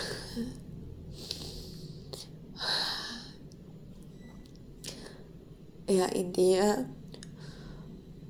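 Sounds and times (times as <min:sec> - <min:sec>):
deep breathing: 0:00.0 - 0:03.4, 0:07.4 - 0:08.1
speech: 0:05.9 - 0:07.0.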